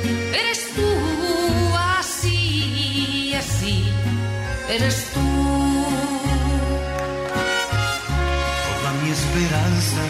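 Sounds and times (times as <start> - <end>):
mariachi band playing a song for karaoke: 0.0 - 10.0
speech: 4.7 - 5.3.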